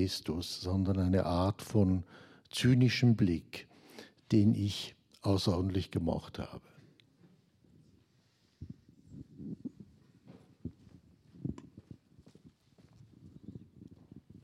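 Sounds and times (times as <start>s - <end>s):
speech: 0.0s - 3.7s, 4.3s - 6.7s
faint low rumble: 7.7s - 14.4s
footsteps walking at an even pace: 9.6s - 14.4s.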